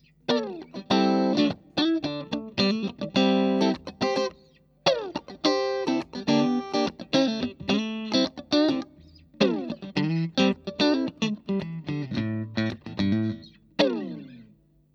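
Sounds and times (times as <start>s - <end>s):
Fender Stratocaster electric guitar: 0.0s - 14.7s.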